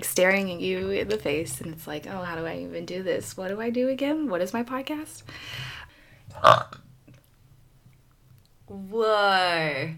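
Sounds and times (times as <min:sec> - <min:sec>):
speech: 0:00.2 - 0:05.8, 0:06.4 - 0:06.8, 0:08.7 - 0:09.9
faint breathy noise: 0:05.2 - 0:06.3
loud burp: 0:06.3 - 0:06.8.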